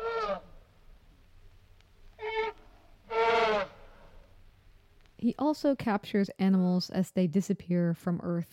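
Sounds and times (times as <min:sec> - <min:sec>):
elephant trumpeting: 0:00.0 - 0:00.5, 0:02.2 - 0:04.2
speech: 0:05.2 - 0:08.5.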